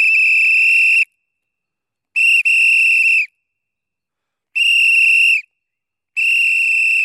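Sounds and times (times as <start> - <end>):
referee's pea whistle blowing shrill blasts: 0.0 - 1.1, 2.2 - 3.3, 4.6 - 5.5, 6.2 - 7.0.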